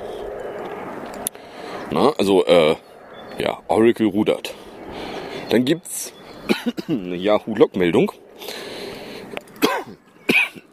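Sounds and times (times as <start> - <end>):
speech: 1.9 - 4.6, 5.5 - 8.2
coughs: 6.5 - 7.0, 9.6 - 10.7.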